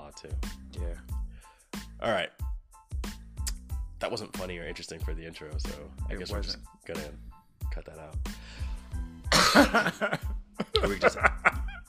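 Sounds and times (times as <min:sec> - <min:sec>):
speech: 0:00.2 - 0:01.1, 0:02.0 - 0:02.4, 0:04.0 - 0:08.7, 0:09.5 - 0:11.3
person coughing into the microphone: 0:09.3 - 0:10.0
person chuckling: 0:09.3 - 0:11.8.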